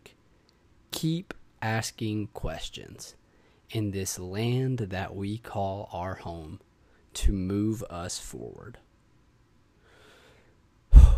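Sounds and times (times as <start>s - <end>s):
speech: 1.0s - 8.8s
deep breath: 3.2s - 3.7s, 9.8s - 11.1s.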